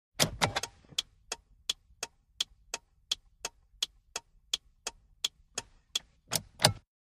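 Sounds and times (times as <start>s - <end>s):
1998 Mitsubishi Montero hazard light ticking in car interior: 0.2s - 6.8s.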